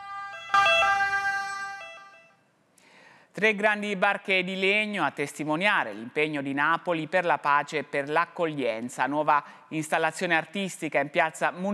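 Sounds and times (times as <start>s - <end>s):
ambulance siren with multi-tone wail: 0.0s - 2.3s
speech: 3.4s - 11.7s.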